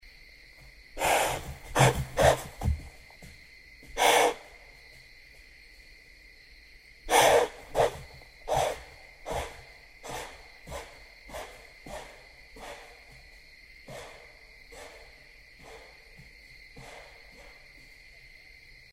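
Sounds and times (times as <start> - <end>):
white-tailed deer snorting: 1.0 - 3.0, 3.9 - 4.6, 7.0 - 17.8.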